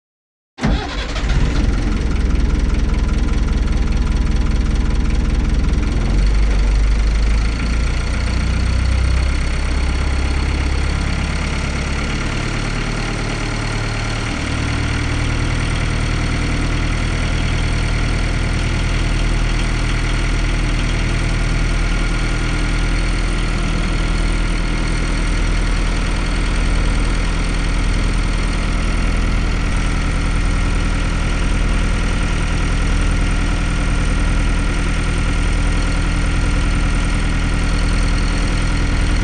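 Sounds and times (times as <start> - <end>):
powerboat engine starting and running: 0.6 - 39.2.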